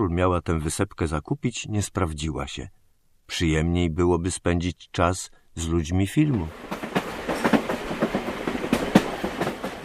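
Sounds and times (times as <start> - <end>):
speech: 0.0 - 6.8
passenger train wheels clattering on rails: 6.5 - 9.8.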